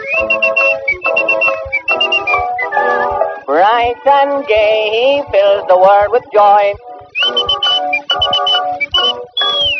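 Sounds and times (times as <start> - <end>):
person whistling a bright tune: 0.0 - 3.4, 7.1 - 9.7
steady instrumental accompaniment: 0.0 - 9.7
speech: 3.8 - 8.4.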